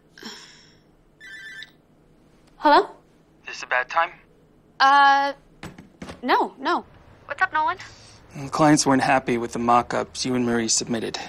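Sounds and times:
mobile phone ringing: 1.2s - 1.8s
speech: 2.6s - 3.0s, 3.6s - 4.2s, 4.8s - 5.4s, 6.2s - 11.2s.

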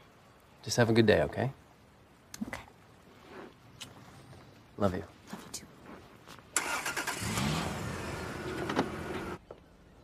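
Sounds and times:
speech: 0.6s - 1.6s, 4.8s - 5.2s
car pulling up outside a house: 6.6s - 9.4s.

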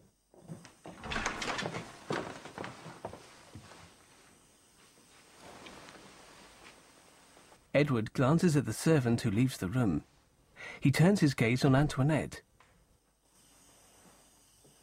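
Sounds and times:
study door swinging open with a rattling clatter: 0.9s - 2.4s
speech: 7.8s - 10.1s, 10.7s - 12.5s.

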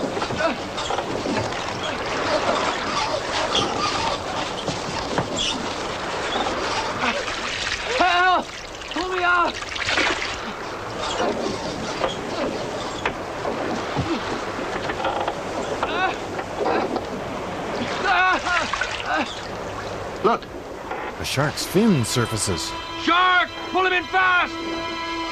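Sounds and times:
sea water rushing and churning around a man towed astern of a ship: 0.0s - 25.3s
voices shouting: 21.2s - 24.6s
speech: 21.4s - 22.9s, 23.8s - 24.8s.

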